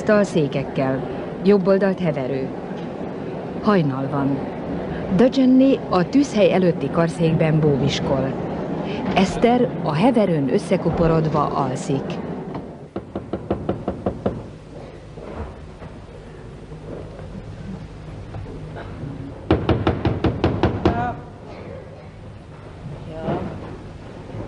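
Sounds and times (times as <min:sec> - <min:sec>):
speech: 0:00.0 - 0:02.6, 0:03.6 - 0:12.3
rapid loud knocking on a door: 0:12.9 - 0:14.5, 0:19.5 - 0:21.1.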